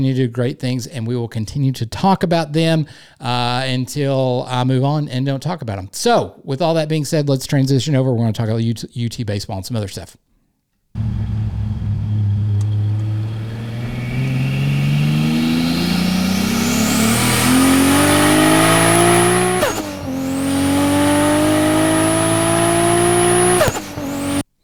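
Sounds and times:
speech: 0.0 - 10.2
Toyota Supra MK4 2JZ engine revving: 11.0 - 24.4.

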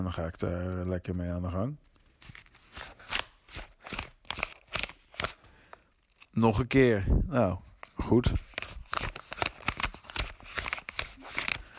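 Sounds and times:
speech: 0.0 - 2.9, 6.4 - 8.5
paper being folded and creased: 2.2 - 5.4, 7.7 - 11.7.

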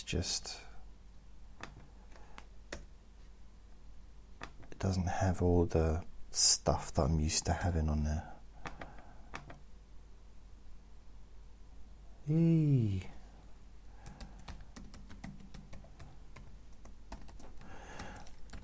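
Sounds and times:
speech: 0.0 - 0.7, 4.8 - 8.3, 12.3 - 13.2
typing on a laptop keyboard: 8.6 - 9.6, 14.0 - 18.6
short loud falling-pitched vocal sound: 12.2 - 13.2.

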